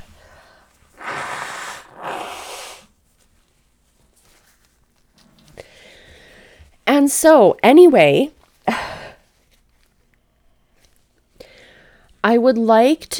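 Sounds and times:
person blowing their nose: 0.9 - 2.9
speech: 7.0 - 8.4, 12.3 - 13.1.

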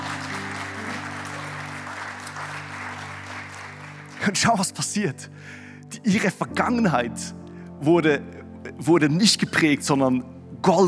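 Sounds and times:
crowd clapping: 0.0 - 4.8
speech: 4.2 - 10.8.

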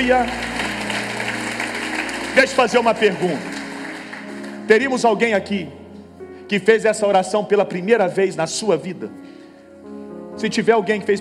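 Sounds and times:
speech: 0.0 - 0.5, 2.4 - 3.5, 4.7 - 5.8, 6.5 - 9.3, 10.4 - 11.2
crowd clapping at a religious service after a prayer: 0.0 - 5.0.

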